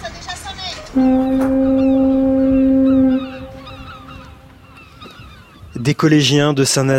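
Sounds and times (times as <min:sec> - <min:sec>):
speech: 0:00.9 - 0:01.7, 0:05.8 - 0:06.9
loud deep foghorn blast serving as a school bell: 0:00.9 - 0:04.6
squawking seagull cries: 0:01.0 - 0:05.8.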